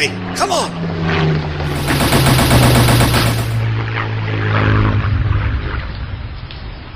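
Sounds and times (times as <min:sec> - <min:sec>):
aircraft engine drone: 0:00.0 - 0:06.9
machine-gun fire from an aircraft's strafing run: 0:01.7 - 0:03.7.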